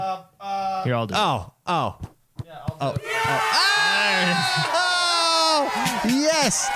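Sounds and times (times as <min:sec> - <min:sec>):
speech: 0:00.2 - 0:02.1, 0:02.8 - 0:04.9, 0:05.5 - 0:06.7
people yelling and whooping in celebration: 0:03.0 - 0:06.7.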